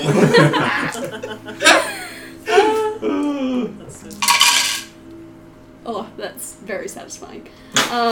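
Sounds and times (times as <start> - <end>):
speech: 0.0 - 0.8, 6.7 - 8.1
people chuckling and laughing: 0.0 - 4.2
dice rolled for an attack in a tabletop game: 4.1 - 4.9.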